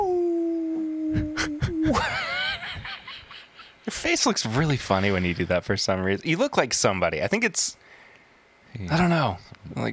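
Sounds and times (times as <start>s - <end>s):
person imitating a dog howl: 0.0s - 2.0s
speech: 1.1s - 2.3s, 3.9s - 8.0s, 8.7s - 9.9s.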